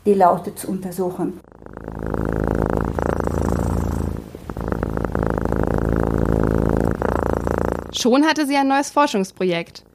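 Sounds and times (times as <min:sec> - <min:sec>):
speech: 0:00.0 - 0:01.6, 0:08.0 - 0:09.9
domestic cat purring: 0:01.0 - 0:09.9.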